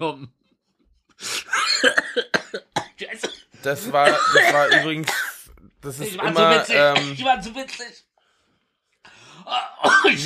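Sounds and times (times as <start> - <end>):
speech: 0.0 - 0.4, 1.2 - 2.3, 3.1 - 8.1, 9.4 - 10.2
person in a harsh coughing fit: 1.4 - 5.4, 6.2 - 7.2, 9.8 - 10.2
laughter: 3.6 - 5.1, 5.9 - 7.0.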